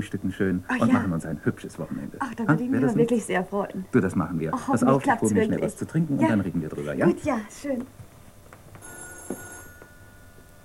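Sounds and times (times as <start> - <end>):
speech: 0.0 - 8.0
faint steady hum: 0.0 - 10.6
telephone with bright warbling electronic ring: 8.8 - 10.4.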